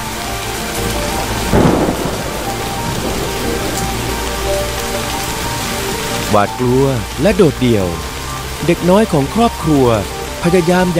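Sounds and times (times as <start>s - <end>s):
heavy rain pouring on a forest: 0.0s - 10.9s
deep rumble of thunder: 0.3s - 8.3s
speech: 6.3s - 10.9s.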